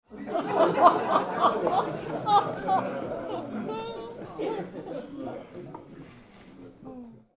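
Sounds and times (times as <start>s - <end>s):
small mixed group laughing indoors: 0.1s - 6.3s.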